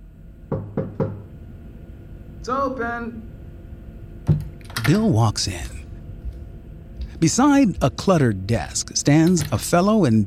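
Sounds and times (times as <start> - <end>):
knocking on a wooden office door: 0.5 - 1.3
speech: 2.4 - 3.3, 4.2 - 5.8, 7.2 - 10.2.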